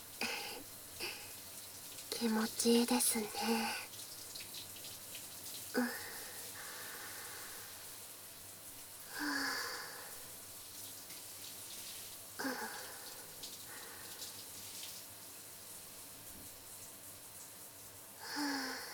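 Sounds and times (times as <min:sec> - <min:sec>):
warm shower water running: 0:00.0 - 0:18.9
speech: 0:02.2 - 0:03.8.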